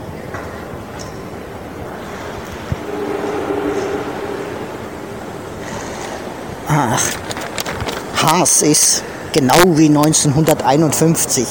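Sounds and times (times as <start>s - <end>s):
faint whining tone from a train: 2.5s - 6.6s
busy train station hall with shops ambience: 2.5s - 7.6s
speech: 6.8s - 7.2s, 8.3s - 11.5s.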